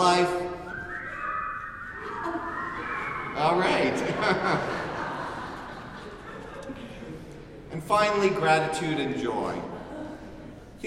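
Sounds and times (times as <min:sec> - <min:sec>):
speech: 0:00.0 - 0:00.4, 0:07.9 - 0:09.7
congregation in a church whistling a tune: 0:00.0 - 0:06.0
laughter: 0:01.2 - 0:07.8, 0:09.3 - 0:10.8.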